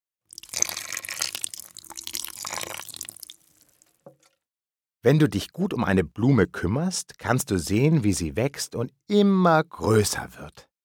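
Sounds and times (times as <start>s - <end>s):
water pouring from a watering can onto flowers: 0.3s - 4.4s
speech: 5.0s - 10.7s.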